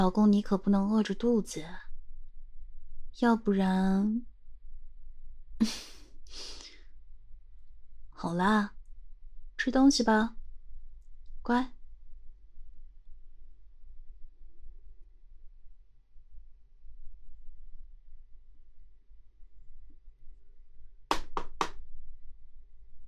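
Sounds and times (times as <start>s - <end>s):
speech: 0.0s - 1.8s, 3.2s - 4.3s, 5.6s - 6.6s, 8.2s - 8.8s, 9.6s - 10.4s, 11.4s - 11.8s
low hum: 0.0s - 23.0s
knocking on a door: 21.1s - 21.8s.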